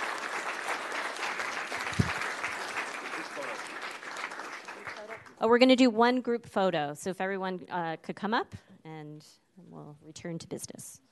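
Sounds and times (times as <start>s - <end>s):
sharp loud clap: 0.0s - 5.3s
crowd of people applauding: 0.0s - 5.4s
speech: 5.4s - 8.7s, 10.1s - 11.0s.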